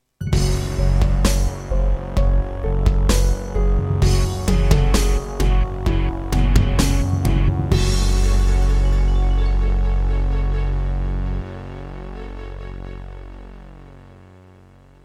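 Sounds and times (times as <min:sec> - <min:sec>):
Roland SonicCell GM2 synthesizer: 0:00.2 - 0:15.0.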